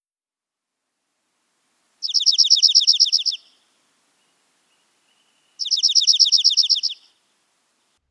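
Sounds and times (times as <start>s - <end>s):
dark-eyed junco singing musical trills: 2.0s - 7.2s.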